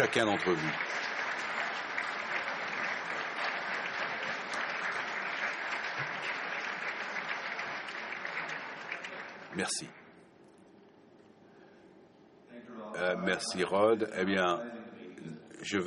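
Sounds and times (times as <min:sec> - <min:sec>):
speech: 0:00.0 - 0:01.1, 0:09.6 - 0:10.0, 0:13.0 - 0:15.8
large audience applauding at a meeting: 0:00.0 - 0:09.8.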